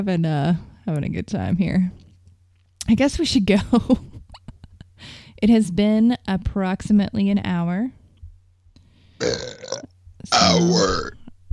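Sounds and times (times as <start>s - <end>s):
speech: 0.0s - 2.0s, 2.9s - 4.1s, 5.0s - 8.0s, 9.2s - 11.2s
loud burps: 9.2s - 11.3s.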